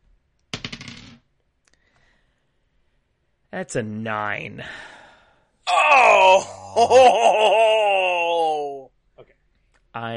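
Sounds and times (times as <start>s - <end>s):
dice clattering across a hard tabletop: 0.5s - 1.3s
speech: 3.5s - 4.9s, 6.3s - 7.9s, 10.0s - 10.1s.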